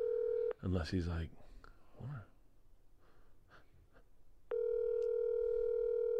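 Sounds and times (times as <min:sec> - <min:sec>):
speech: 0:00.6 - 0:02.3
phone line click on an outgoing call: 0:04.5 - 0:06.1.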